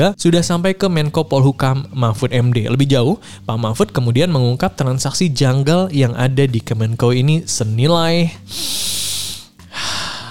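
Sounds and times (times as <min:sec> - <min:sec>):
speech: 0:00.0 - 0:09.0
deep breath drawn in sharply through nose and mouth: 0:08.4 - 0:10.2.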